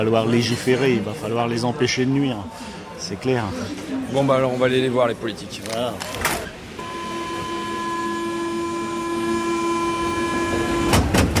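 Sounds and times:
speech: 0:00.0 - 0:06.5
metro train humming along the line: 0:07.2 - 0:11.3.

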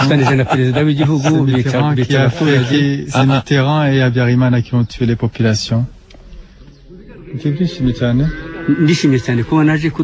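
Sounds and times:
laughter: 0:00.0 - 0:03.5
speech: 0:00.0 - 0:06.0, 0:07.3 - 0:10.0
cattle lowing and mooing: 0:06.9 - 0:09.9.

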